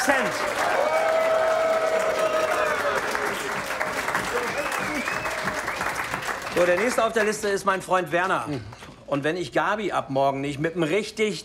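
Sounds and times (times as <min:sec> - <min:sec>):
audience applause: 0:00.0 - 0:07.6
speech: 0:06.6 - 0:11.4.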